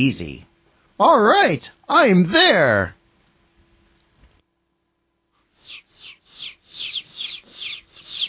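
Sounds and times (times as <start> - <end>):
speech: 0.0 - 3.0
chicks cheeping on a farm: 5.6 - 8.2.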